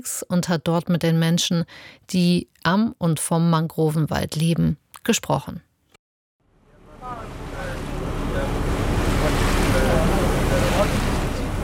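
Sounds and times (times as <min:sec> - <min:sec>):
speech: 0:00.0 - 0:05.7
faint boat engine rumble: 0:06.5 - 0:11.6
boat cutting through water: 0:06.7 - 0:11.6
waves sloshing against the boat hull: 0:07.0 - 0:11.6.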